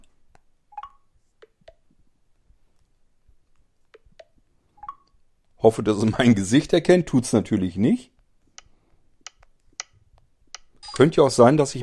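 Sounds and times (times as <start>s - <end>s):
iPhone keypad beeps and clicks during unlocking: 0.7s - 1.0s, 4.2s - 5.1s, 10.6s - 11.1s
speech: 5.6s - 8.1s, 11.0s - 11.8s.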